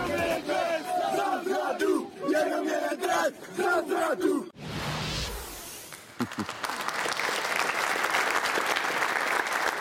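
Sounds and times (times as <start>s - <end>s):
football fans chanting at a player: 0.0s - 4.6s
speech: 2.6s - 4.5s
clapping: 5.9s - 9.7s.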